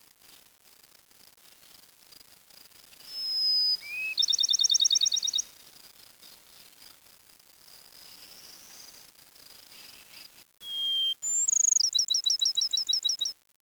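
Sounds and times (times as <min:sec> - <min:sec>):
bird song with whistled notes and ticking trills: 0:03.0 - 0:05.6, 0:10.6 - 0:13.4.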